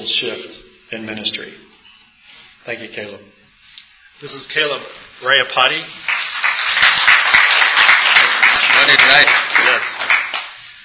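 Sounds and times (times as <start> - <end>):
speech: 0.0 - 1.6, 2.6 - 3.4, 4.2 - 6.2, 8.8 - 9.9
audience clapping: 6.0 - 10.7.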